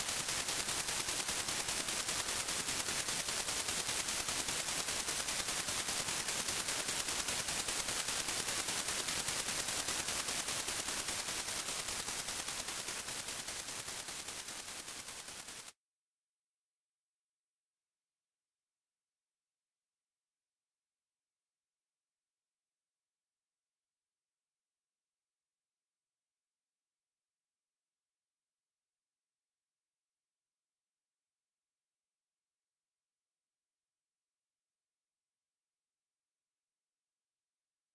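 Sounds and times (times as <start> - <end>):
polystyrene: 0.2 - 15.7.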